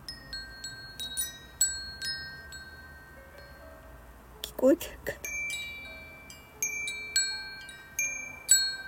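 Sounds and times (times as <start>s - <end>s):
metal temple bell wind chime ringing: 0.0s - 3.7s, 5.2s - 8.8s
speech: 4.6s - 5.2s.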